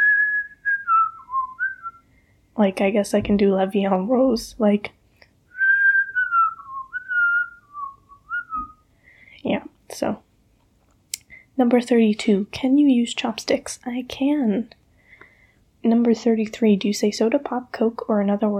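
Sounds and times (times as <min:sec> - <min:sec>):
person whistling a wavering melody: 0:00.0 - 0:02.1, 0:05.5 - 0:08.8
speech: 0:02.6 - 0:05.0, 0:10.0 - 0:10.3, 0:11.6 - 0:14.8, 0:15.8 - 0:18.5.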